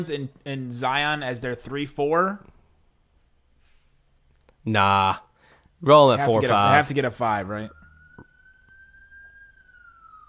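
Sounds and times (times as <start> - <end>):
speech: 0.0 - 2.5, 4.6 - 7.8
police car siren wailing: 6.2 - 10.2.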